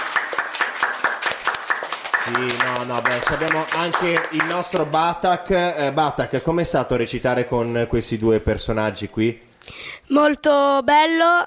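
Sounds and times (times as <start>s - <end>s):
audience applause with many hands clapping: 0.0s - 5.1s
speech: 2.3s - 11.4s.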